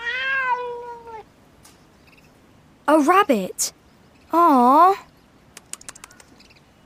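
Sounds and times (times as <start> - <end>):
cat meowing: 0.0 - 1.3
speech: 2.9 - 5.1.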